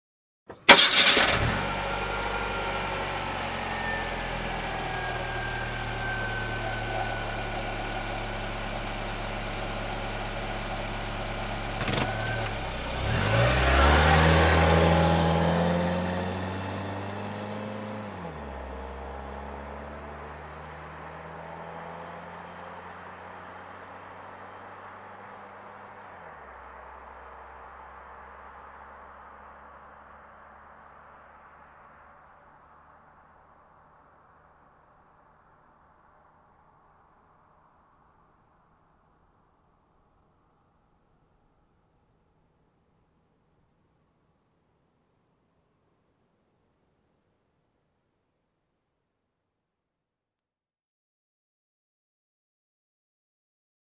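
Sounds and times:
car engine ignition: 0:00.5 - 0:34.6.

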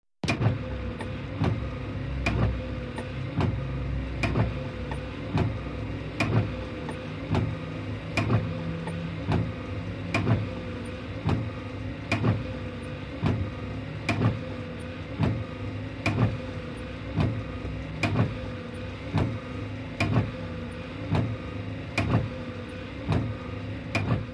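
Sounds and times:
car wipers running: 0:00.2 - 0:24.3.

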